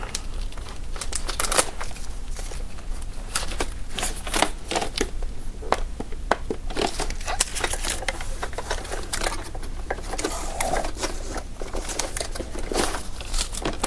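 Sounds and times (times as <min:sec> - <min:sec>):
plastic and cardboard packaging crinkling and rustling: 0:00.0 - 0:13.8
plastic and cardboard pieces scraping out of a robot vacuum: 0:03.3 - 0:13.8.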